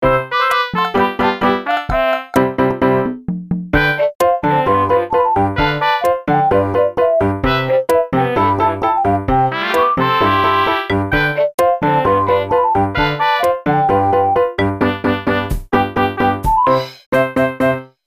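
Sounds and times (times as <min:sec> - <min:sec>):
cha cha music: 0:00.0 - 0:17.8.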